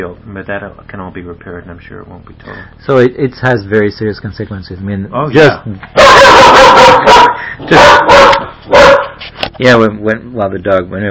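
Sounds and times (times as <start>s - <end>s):
speech: 0.0s - 8.8s, 9.6s - 11.1s
dog barking: 6.0s - 9.2s.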